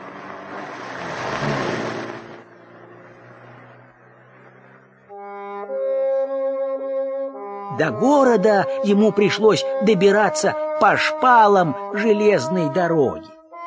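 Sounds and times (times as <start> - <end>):
car engine revving as it pulls away: 0.0 - 6.1
speech: 7.8 - 13.3.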